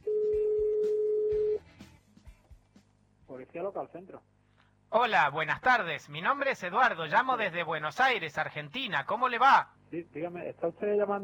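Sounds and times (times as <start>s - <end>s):
telephone dial tone: 0.0s - 1.6s
speech: 3.6s - 11.2s.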